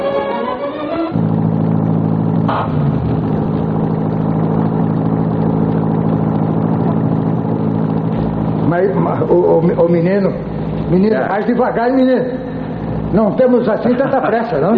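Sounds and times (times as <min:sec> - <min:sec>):
sports car engine running at a low rumbling idle: 0:01.1 - 0:14.7
speech: 0:08.8 - 0:12.5, 0:13.1 - 0:14.7
laughter: 0:13.8 - 0:14.7.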